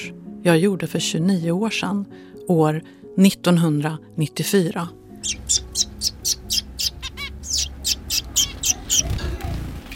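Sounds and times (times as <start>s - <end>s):
speech: 0.1s - 5.9s
zebra finches chirping: 5.2s - 9.2s.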